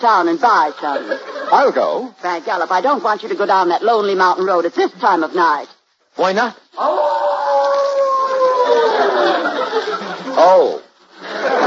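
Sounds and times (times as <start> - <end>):
speech: 0.0 - 7.3, 9.2 - 10.8
laughter: 0.7 - 2.0, 8.6 - 11.6
wolf howling: 6.8 - 9.4.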